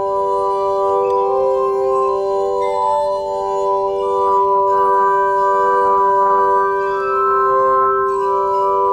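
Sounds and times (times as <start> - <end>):
glass armonica played with wet fingers on spinning glasses: 0.0 - 8.9.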